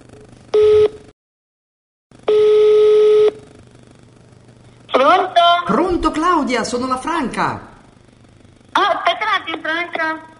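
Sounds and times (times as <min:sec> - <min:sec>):
phone line ringing while a call is placed: 0:02.3 - 0:03.4
speech: 0:05.0 - 0:07.7, 0:08.8 - 0:10.3.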